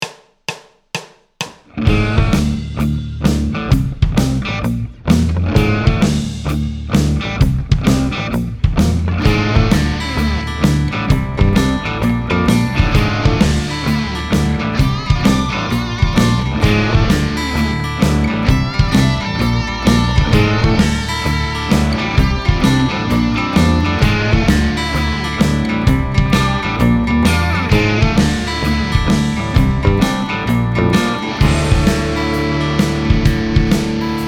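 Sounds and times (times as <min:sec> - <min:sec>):
dissonant music with bass: 0:01.9 - 0:34.2.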